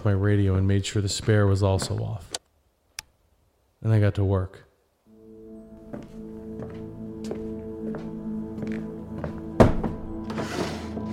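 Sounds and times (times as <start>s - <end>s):
speech: 0.0s - 2.4s, 3.8s - 4.7s
wooden drawers and cabinets being yanked open during a search: 9.7s - 11.1s.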